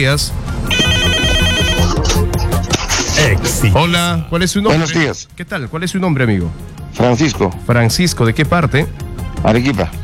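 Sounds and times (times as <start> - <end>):
speech: 0.0 - 1.1, 3.2 - 10.0
telephone ringing for an incoming call: 0.7 - 2.0.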